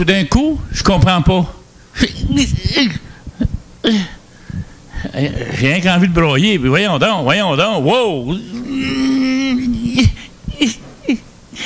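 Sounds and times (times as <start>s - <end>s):
speech: 0.0s - 3.0s, 3.8s - 10.8s
person crying with joy with wail, sobs and gasping breaths: 2.0s - 4.2s, 8.4s - 11.6s.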